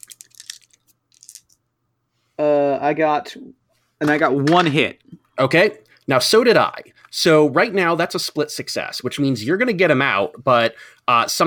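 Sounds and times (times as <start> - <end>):
five dice clattering across a surface: 0.0 - 1.6
speech: 2.4 - 11.4.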